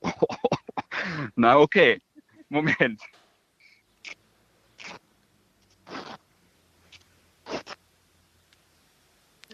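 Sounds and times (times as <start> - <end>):
speech: 1.3 - 3.2
towel being torn apart by hand: 5.8 - 6.2.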